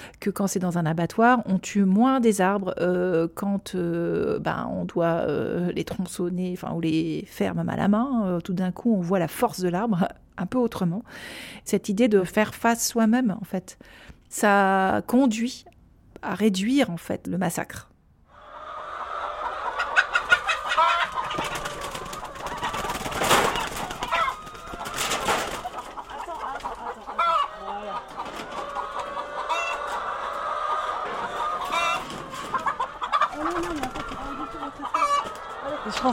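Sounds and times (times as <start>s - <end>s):
speech: 0.2s - 17.9s
flock of chickens clucking and chattering in a barnyard: 18.3s - 36.1s
laughter: 33.0s - 36.1s.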